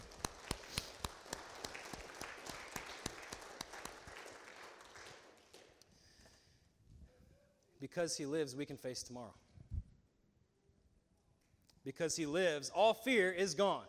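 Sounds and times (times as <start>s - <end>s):
crowd clapping and applauding: 0.0s - 6.0s
speech: 7.8s - 9.5s, 11.9s - 13.8s.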